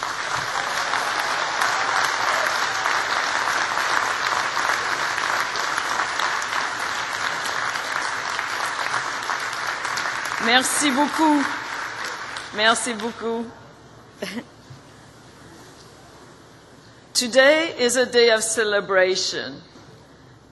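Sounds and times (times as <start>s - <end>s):
large graduating class crowd applauding: 0.0s - 12.6s
speech: 10.5s - 11.6s, 12.5s - 13.6s, 14.2s - 14.6s, 17.2s - 19.7s.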